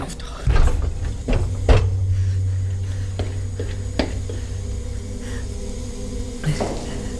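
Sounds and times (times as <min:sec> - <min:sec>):
low mechanical hum: 0:00.0 - 0:07.1
heavy cold room door shutting: 0:00.4 - 0:04.3.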